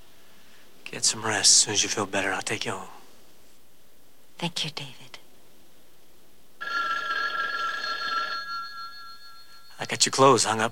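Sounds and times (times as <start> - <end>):
speech: 0.9 - 3.0, 4.4 - 5.2, 9.8 - 10.7
telephone ringing in a home: 6.6 - 10.7.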